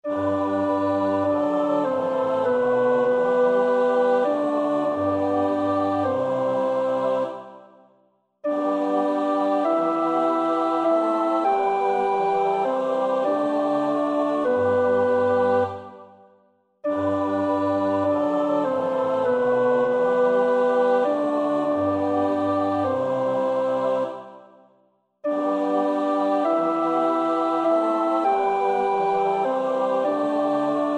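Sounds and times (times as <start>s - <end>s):
psalm setting: 0.0s - 30.9s.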